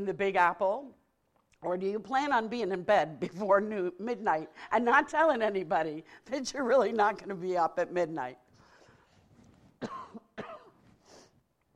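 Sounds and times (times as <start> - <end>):
speech: 0.0 - 1.0, 1.6 - 8.4
sharp harsh coughs: 9.8 - 10.8.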